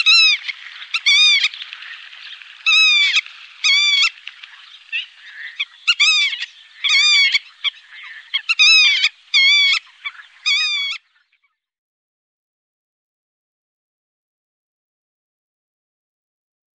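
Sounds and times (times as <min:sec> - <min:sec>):
black-tailed godwit calling with quick nasal notes: 0:00.0 - 0:11.5.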